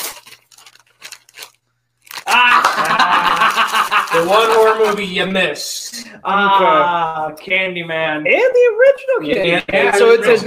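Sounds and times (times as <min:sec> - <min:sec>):
gift wrapping paper being ripped open: 0:00.0 - 0:05.1
laughter: 0:02.3 - 0:05.3, 0:09.2 - 0:10.4
speech: 0:04.2 - 0:10.4.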